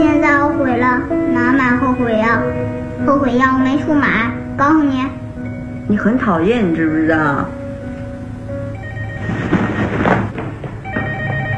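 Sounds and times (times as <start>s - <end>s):
noisy background: 0.0s - 11.5s
speech: 2.0s - 5.2s, 5.9s - 7.6s
telephone ringing with a bell-like tone: 8.6s - 11.5s.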